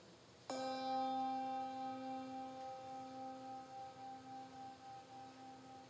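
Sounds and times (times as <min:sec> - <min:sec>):
single bell struck in memorial: 0:00.5 - 0:05.8.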